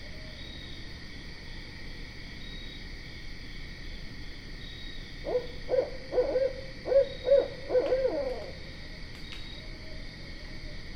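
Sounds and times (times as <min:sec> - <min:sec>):
faint insect buzz: 0:00.0 - 0:10.9
barred owl hooting: 0:05.2 - 0:09.0.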